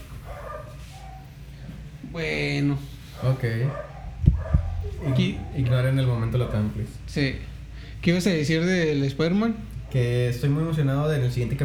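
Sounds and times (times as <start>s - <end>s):
dogs barking: 0.0s - 1.9s, 3.0s - 7.1s
speech: 2.2s - 3.9s, 5.0s - 11.6s
low rumbling hum: 3.9s - 7.9s.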